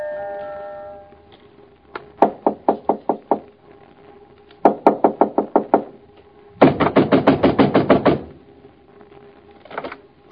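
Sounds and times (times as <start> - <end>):
pounding on a door: 2.2 - 3.5, 4.6 - 6.0, 6.6 - 8.4.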